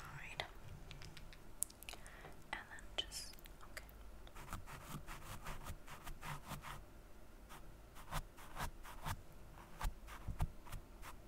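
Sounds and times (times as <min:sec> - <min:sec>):
low steady hum: 0:00.0 - 0:11.2
soft brushing strokes of makeup: 0:02.8 - 0:06.8, 0:07.5 - 0:11.2.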